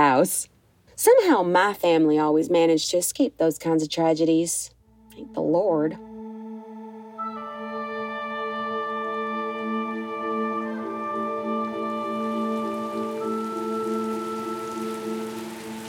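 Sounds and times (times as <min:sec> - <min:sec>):
speech: 0:00.2 - 0:06.1
sustained droning musical chords: 0:04.8 - 0:15.8
steady rain pattering: 0:08.2 - 0:15.8.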